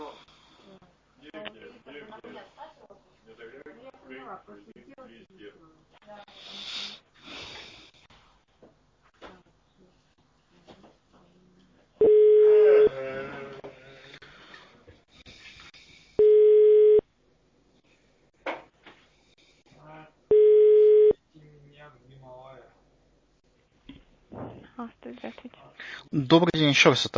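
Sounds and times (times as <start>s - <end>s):
speech: 4.3s - 7.5s, 25.2s - 27.1s
telephone ringback tones of unanswered call to office extension: 12.0s - 12.9s, 16.2s - 17.0s, 20.3s - 21.1s.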